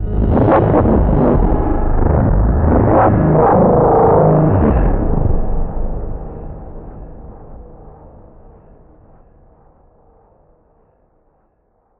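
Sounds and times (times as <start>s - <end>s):
warp approach effect: 0.0s - 7.9s.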